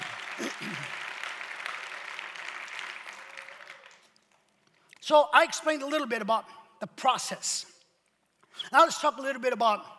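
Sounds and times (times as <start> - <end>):
audience clapping: 0.0 - 4.9
speech: 0.4 - 1.0, 5.1 - 7.7, 8.6 - 9.9.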